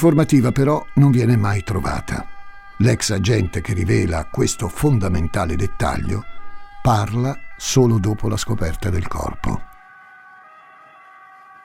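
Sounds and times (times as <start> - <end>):
speech: 0.0 - 9.7
ambulance siren: 0.0 - 11.6.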